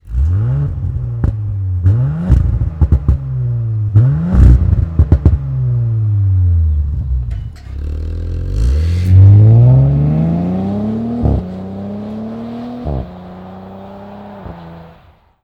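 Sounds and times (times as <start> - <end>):
Audi S4 B9 car exhaust through axle back system: 0.0 - 15.4.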